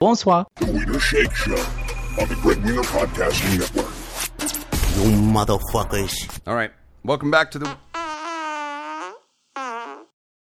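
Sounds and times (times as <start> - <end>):
speech: 0.0 - 4.0, 5.0 - 7.8
loud buzzy farts: 7.6 - 10.1.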